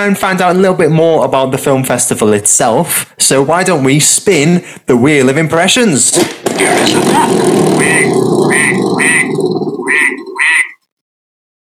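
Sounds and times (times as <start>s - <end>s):
speech: 0.0s - 10.7s
duck quacking: 7.8s - 10.8s.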